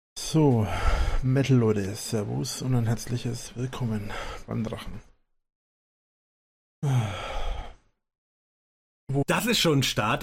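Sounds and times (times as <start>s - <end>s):
speech: 0.3s - 5.1s, 6.8s - 7.2s, 9.1s - 10.2s
low breathy groan opening a metal song: 6.8s - 7.9s.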